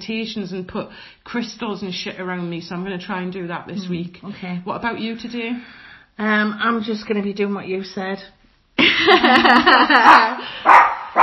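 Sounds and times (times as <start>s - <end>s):
speech: 0.1s - 11.2s
laughter: 8.8s - 10.5s
dog barking: 10.0s - 11.2s.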